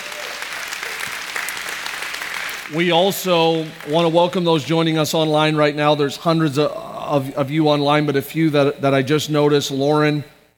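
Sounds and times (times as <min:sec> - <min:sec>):
audience applause: 0:00.0 - 0:04.6
speech: 0:02.7 - 0:10.5.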